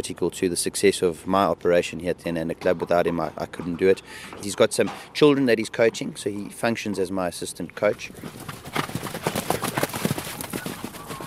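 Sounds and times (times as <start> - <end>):
speech: 0.0 - 8.9
faint outdoor ambience: 0.0 - 11.2
horses galloping on a dirt track: 7.8 - 11.2.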